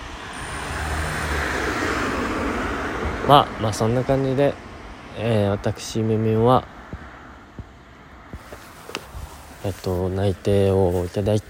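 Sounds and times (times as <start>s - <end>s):
car passing by on road: 0.0s - 11.4s
speech: 3.3s - 6.7s, 9.6s - 11.4s.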